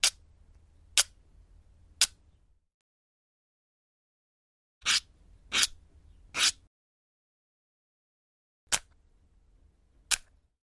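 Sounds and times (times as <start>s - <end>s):
match scratching on box: 4.8s - 5.8s, 6.4s - 6.6s.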